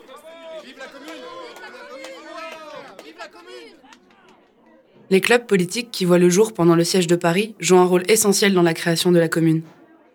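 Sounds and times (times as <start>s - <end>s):
large crowd cheering and acclaiming at a meeting: 0.0s - 9.8s
sharp claps in a crowd: 0.9s - 4.6s
speech: 3.3s - 4.0s, 5.1s - 9.8s.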